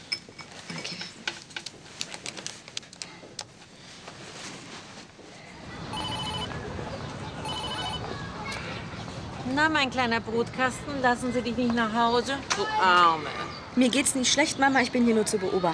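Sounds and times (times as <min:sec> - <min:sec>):
faint rustling and handling noises: 0:00.0 - 0:05.5
electronic ringback tones on an outgoing phone call: 0:05.9 - 0:06.6, 0:07.4 - 0:08.0
speech: 0:09.6 - 0:15.7.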